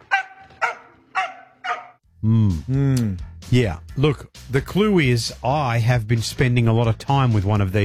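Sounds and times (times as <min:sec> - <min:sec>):
dog barking high-pitched: 0:00.0 - 0:02.0
speech: 0:02.2 - 0:07.8.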